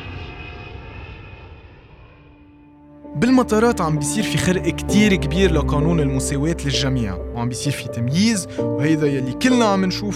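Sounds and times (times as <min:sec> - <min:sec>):
airplane engine drone: 0:00.0 - 0:06.2
speech: 0:03.1 - 0:10.1.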